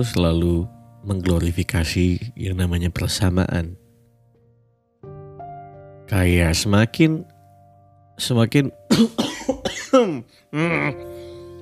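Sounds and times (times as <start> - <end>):
speech: 0.0 - 3.8, 6.1 - 7.3, 8.2 - 11.2
person coughing with a throaty strained tone: 8.9 - 10.9.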